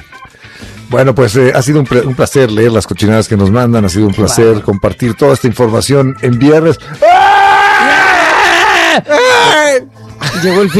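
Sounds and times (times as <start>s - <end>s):
speech: 0.9s - 7.4s, 9.0s - 10.7s
person screaming in a dungeon: 7.0s - 9.9s
laughter: 10.2s - 10.7s.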